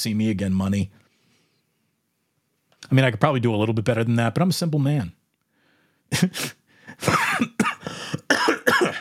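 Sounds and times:
speech: 0.0 - 1.0, 2.9 - 5.2, 6.1 - 7.7
person coughing: 6.2 - 9.0.

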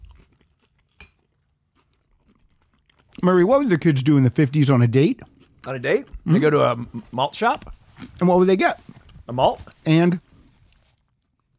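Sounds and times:
chewing a sweet pickle dipped in ketchup: 0.0 - 3.2, 5.1 - 7.0, 8.8 - 11.5
speech: 3.2 - 10.2.

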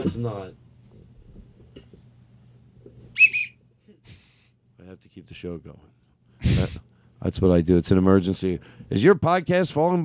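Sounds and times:
speech: 0.0 - 0.6, 4.8 - 10.0
short shrill whistle: 3.1 - 3.6.

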